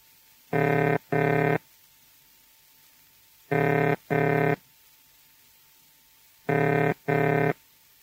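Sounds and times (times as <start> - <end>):
telephone ringing tone over the line: 0.5 - 1.6, 3.5 - 4.6, 6.5 - 7.6.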